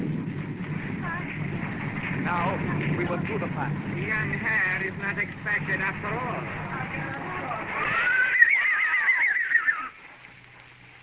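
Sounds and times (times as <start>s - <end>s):
low rumble: 0.0s - 8.6s
speech: 3.0s - 7.0s
horse drawn up with a caleche whinnying: 7.6s - 10.0s.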